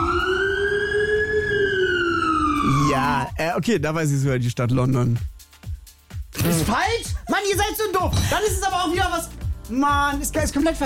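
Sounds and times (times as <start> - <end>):
Polish emergency vehicle siren: 0.0 - 3.4
speech: 3.0 - 5.3, 6.4 - 10.8.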